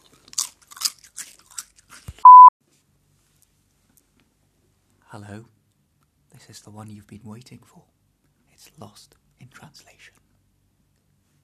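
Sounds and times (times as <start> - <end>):
dry crunches of someone biting into a potato crisp: 0.0 - 2.2
brief steady electronic beep: 2.2 - 2.5
speech: 5.1 - 5.6, 6.4 - 8.0, 8.7 - 10.2.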